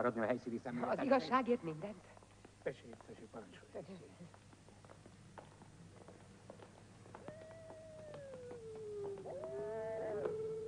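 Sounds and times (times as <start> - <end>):
speech: 0.0 - 4.4
coyote howling: 7.2 - 10.6.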